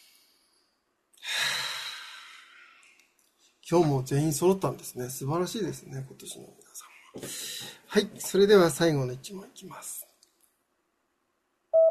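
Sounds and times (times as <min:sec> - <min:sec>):
group of people taking a deep breath together: 0:01.2 - 0:03.0, 0:07.2 - 0:07.9
speech: 0:03.7 - 0:10.0.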